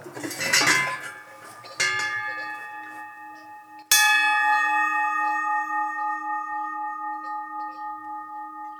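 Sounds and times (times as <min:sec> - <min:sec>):
bronze livestock bell struck: 0:00.6 - 0:08.7.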